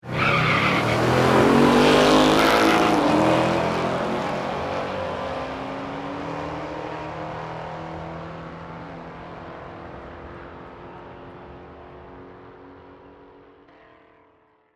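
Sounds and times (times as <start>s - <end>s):
race car tire squeal: 0.0s - 1.6s, 2.2s - 3.1s
two dragster race cars accelerating away: 0.1s - 13.6s.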